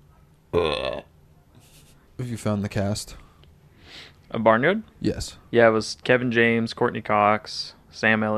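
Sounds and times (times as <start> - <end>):
loud throaty burp: 0.5 - 1.1
speech: 2.4 - 3.3, 4.0 - 8.3.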